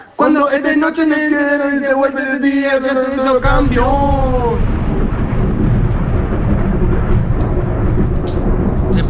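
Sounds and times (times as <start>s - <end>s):
speech: 0.2s - 4.7s
deep rolling thunder: 3.0s - 9.0s
heavy rain hissing in a thunderstorm: 3.2s - 9.0s.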